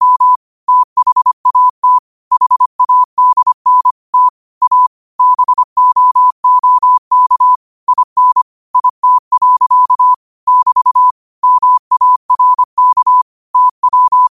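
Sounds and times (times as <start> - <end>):
morse code tone around one kilohertz at 25 WPM: 0.0 - 14.3.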